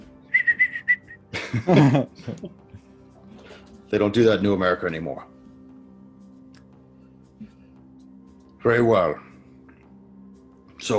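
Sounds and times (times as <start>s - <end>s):
person whistling a short tune: 0.2s - 1.3s
people laughing: 1.3s - 2.6s
speech: 1.5s - 2.7s, 3.9s - 5.3s, 8.6s - 9.3s.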